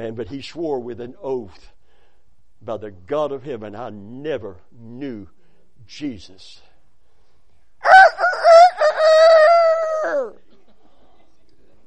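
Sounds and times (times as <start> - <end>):
speech: 0.0 - 1.8, 2.6 - 6.7
person imitating a rooster crow: 7.8 - 10.4.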